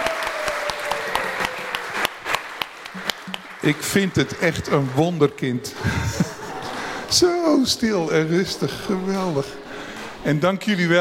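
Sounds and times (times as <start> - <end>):
crowd applauding: 0.0 - 7.1
laughter: 3.2 - 9.5
speech: 3.6 - 6.3, 7.1 - 9.6, 10.2 - 10.9.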